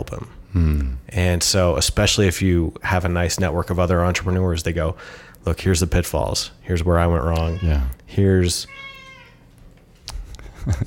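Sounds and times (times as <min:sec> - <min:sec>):
speech: 0:00.1 - 0:08.9, 0:10.6 - 0:10.8
cat meowing: 0:07.4 - 0:08.0, 0:08.6 - 0:09.5.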